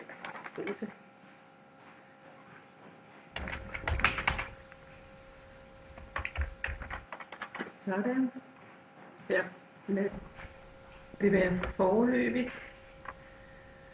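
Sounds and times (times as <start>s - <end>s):
typing on a computer keyboard: 0.0s - 0.9s, 3.4s - 4.7s, 5.9s - 7.8s
speech: 0.6s - 1.1s, 7.9s - 8.5s, 9.3s - 10.3s, 11.2s - 12.7s.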